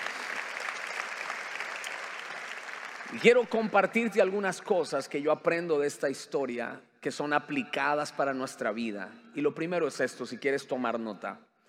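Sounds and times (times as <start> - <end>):
crowd applauding: 0.0 - 4.4
speech: 3.1 - 11.5.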